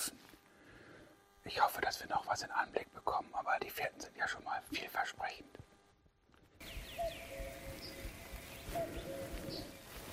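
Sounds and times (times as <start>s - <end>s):
speech: 1.5s - 5.6s
common cuckoo calling two-note cuckoo: 6.6s - 10.1s
smaller birds chirping and twittering: 6.6s - 10.1s.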